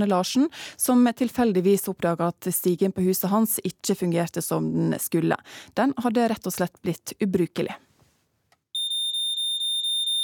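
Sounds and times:
speech: 0.0s - 7.8s
smoke alarm beeping: 8.8s - 10.2s.

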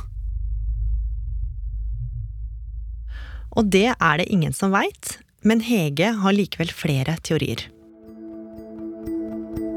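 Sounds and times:
steady low droning hum of unknown source: 0.0s - 4.0s
speech: 3.5s - 7.8s.

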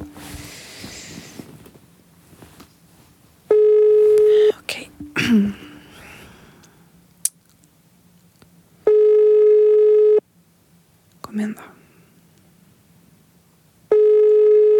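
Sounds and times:
handling noise: 0.0s - 3.3s
phone ringback tone with steady buzzing beeps: 3.5s - 4.5s, 8.8s - 10.2s, 13.9s - 14.7s
person muttering a brief remark: 5.2s - 5.9s.

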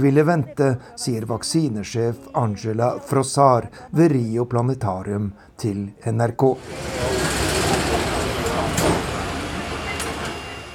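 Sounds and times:
speech: 0.0s - 7.4s
small old historic tram rumbling along its rails: 6.6s - 10.7s.

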